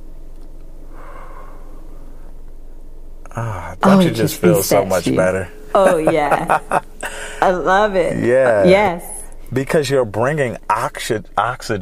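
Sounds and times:
quick deep inhale and exhale: 0:00.8 - 0:02.4, 0:07.0 - 0:07.4
speech: 0:03.4 - 0:11.8
laughter: 0:04.0 - 0:07.6.

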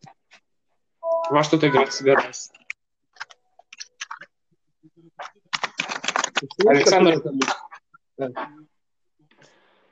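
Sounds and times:
speech: 0:01.3 - 0:02.6, 0:06.4 - 0:07.6, 0:08.2 - 0:08.7
computer keyboard typing while someone plays a computer game: 0:02.6 - 0:04.3, 0:05.2 - 0:07.6.

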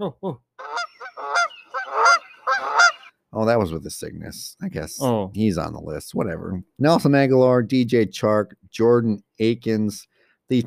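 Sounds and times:
speech: 0:00.0 - 0:00.5, 0:03.4 - 0:10.6
goose honking: 0:00.6 - 0:03.1.

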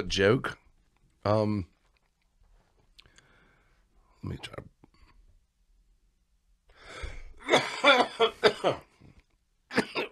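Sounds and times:
speech: 0:00.0 - 0:00.6, 0:01.2 - 0:01.7, 0:04.2 - 0:04.7, 0:06.9 - 0:08.9
person coughing: 0:07.4 - 0:09.0, 0:09.7 - 0:10.1.

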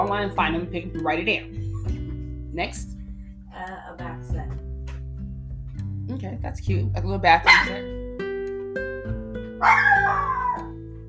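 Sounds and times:
speech: 0:00.0 - 0:02.0, 0:02.6 - 0:03.0, 0:03.6 - 0:04.6, 0:06.1 - 0:08.1, 0:08.7 - 0:10.2
small dog barking: 0:07.5 - 0:07.8, 0:09.6 - 0:10.6.

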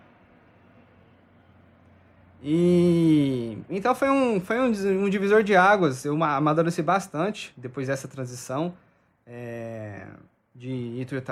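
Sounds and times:
airplane engine roar passing overhead: 0:00.0 - 0:02.5
speech: 0:02.4 - 0:11.3.

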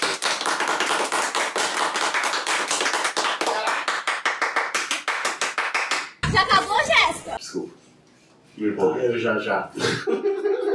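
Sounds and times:
audience applause at a new year's kickoff event: 0:00.0 - 0:06.1
speech: 0:07.5 - 0:07.9, 0:08.6 - 0:10.7
laughter: 0:09.8 - 0:10.7.

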